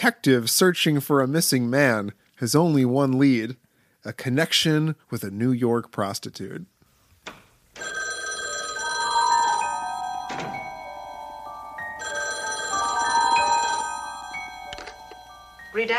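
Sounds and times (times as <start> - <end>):
speech: 0.0 - 7.9, 15.8 - 15.9
telephone ringing with bright stacked metallic tones: 7.8 - 15.9.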